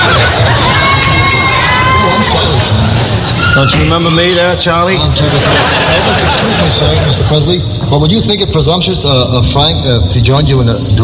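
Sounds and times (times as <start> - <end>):
laughter: 0.0 - 1.0, 5.0 - 7.6
dense crowd of women screaming at a male singer: 0.0 - 2.7
speech: 3.6 - 11.0.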